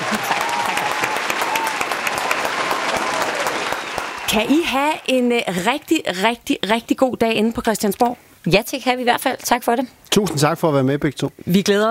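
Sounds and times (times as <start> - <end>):
small group applause for the political jury: 0.0 - 5.2
speech: 4.3 - 11.8.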